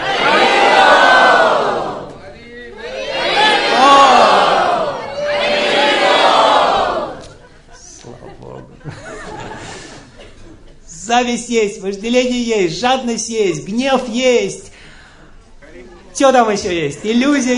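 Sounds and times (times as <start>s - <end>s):
large crowd shouting a chant in unison: 0.0s - 2.1s, 2.8s - 7.2s
crowd murmuring: 0.0s - 10.3s
laughter: 5.5s - 10.9s, 16.6s - 17.5s
speech: 11.2s - 14.7s, 16.2s - 17.5s.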